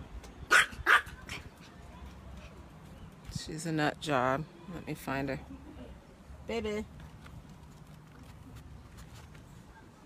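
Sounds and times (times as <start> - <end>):
noise: 0.0 - 10.0
Yorkshire terrier barking outdoors: 0.5 - 1.4
speech: 3.5 - 5.7, 6.5 - 7.0.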